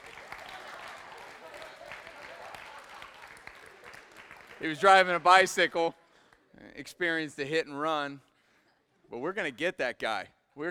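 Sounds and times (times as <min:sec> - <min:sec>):
audience at a worship service applauding: 0:00.0 - 0:05.5
speech: 0:04.6 - 0:06.0, 0:06.8 - 0:08.3, 0:09.1 - 0:10.6.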